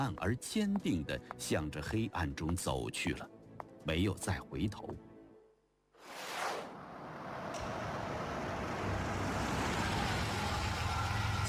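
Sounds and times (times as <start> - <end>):
speech: 0.0 - 5.1
car speeding in and stopping in front of a building at night: 6.1 - 11.4
car engine rumbling: 6.8 - 11.4.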